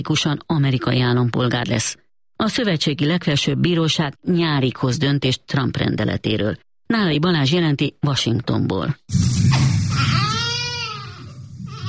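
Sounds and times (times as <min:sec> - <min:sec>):
speech: 0:00.0 - 0:10.1
newborn baby crying: 0:09.9 - 0:11.8.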